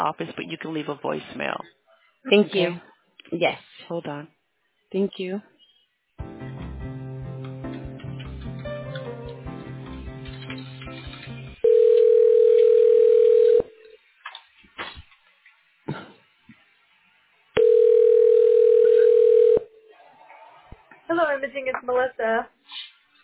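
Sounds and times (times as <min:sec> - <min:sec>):
speech: 0:00.0 - 0:05.5, 0:21.5 - 0:22.5
tonal music: 0:06.2 - 0:11.6
telephone ringback tone while an office call is transferred: 0:11.6 - 0:13.8, 0:17.6 - 0:19.7.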